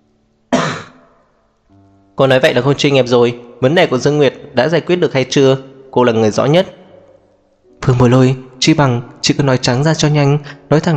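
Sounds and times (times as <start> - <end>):
woman clearing her throat: 0.5 - 1.1
speech: 2.2 - 6.8, 7.8 - 10.9.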